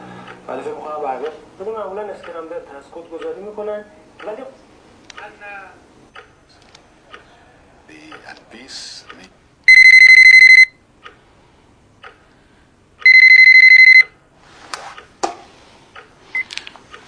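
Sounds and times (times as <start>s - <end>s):
speech: 0.5s - 5.9s, 7.9s - 9.4s
electronic telephone ringtone for an incoming call: 9.7s - 10.8s, 13.0s - 14.1s.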